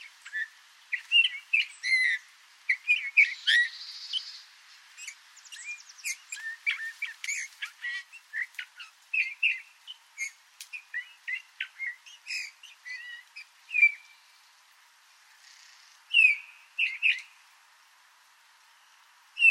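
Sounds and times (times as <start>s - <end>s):
Eurasian bullfinch soft whistles and chirps: 0.1s - 4.4s, 5.0s - 14.2s, 15.5s - 17.3s
faint clicks: 7.1s - 7.7s, 10.6s - 10.8s.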